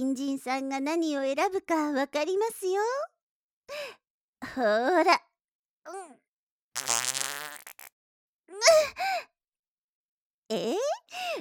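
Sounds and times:
speech: 0:00.0 - 0:03.1, 0:03.7 - 0:06.2, 0:06.8 - 0:07.6, 0:08.6 - 0:09.3, 0:10.5 - 0:11.3
fart: 0:06.8 - 0:07.9.

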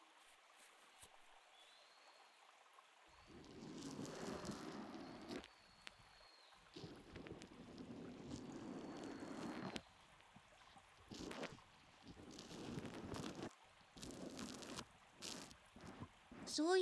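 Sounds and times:
wiping foam off an ear: 0:03.3 - 0:05.4, 0:06.8 - 0:09.8, 0:11.0 - 0:16.8
speech: 0:16.6 - 0:16.8.

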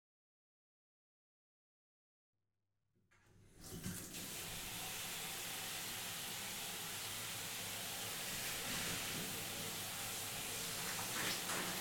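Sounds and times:
shower water rinsing shampoo out of hair: 0:03.5 - 0:11.7.

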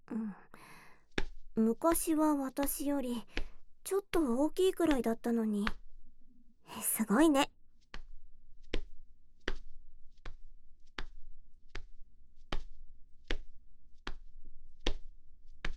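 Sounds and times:
speech: 0:01.6 - 0:05.8, 0:06.7 - 0:07.5
hands tapping rhythmically on a young man's body: 0:07.8 - 0:15.7.

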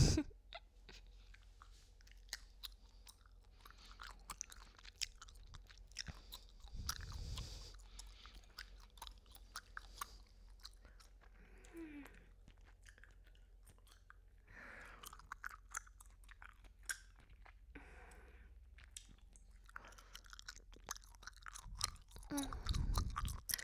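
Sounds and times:
wet gum chewing at the microphone: 0:01.2 - 0:23.6.

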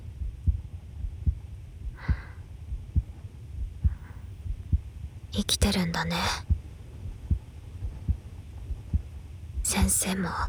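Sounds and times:
steady heartbeat thumping in deep pulses: 0:00.2 - 0:04.9, 0:06.2 - 0:10.0
faint breaths: 0:01.9 - 0:03.1, 0:03.8 - 0:04.5
speech: 0:05.4 - 0:06.5, 0:09.9 - 0:10.4.

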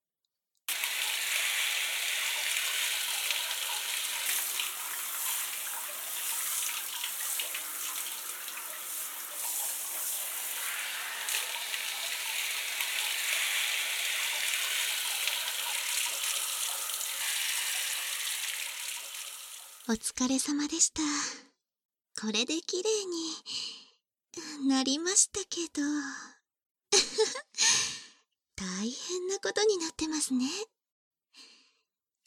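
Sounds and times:
running water during a rinse: 0:00.7 - 0:19.9
speech: 0:19.9 - 0:21.3, 0:22.2 - 0:23.8, 0:24.4 - 0:26.4, 0:28.8 - 0:30.7.

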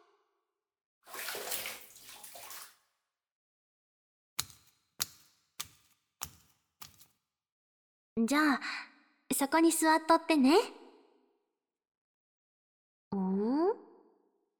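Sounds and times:
bath water pouring while washing someone's back: 0:01.1 - 0:02.8
speech: 0:08.2 - 0:10.8.

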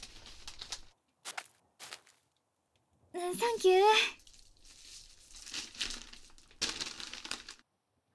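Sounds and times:
newspaper being crumpled and handled: 0:00.0 - 0:00.9, 0:03.3 - 0:07.6
speech: 0:03.2 - 0:04.2.

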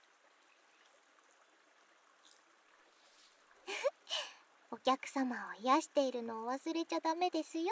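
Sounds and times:
fizzing foam bubbles crackling and hissing as hands squish and press them: 0:00.0 - 0:04.4
speech: 0:04.8 - 0:07.6.

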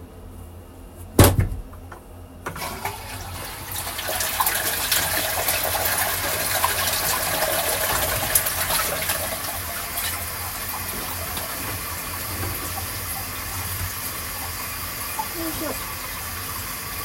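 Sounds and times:
water being poured away from a washbasin: 0:02.6 - 0:17.0.

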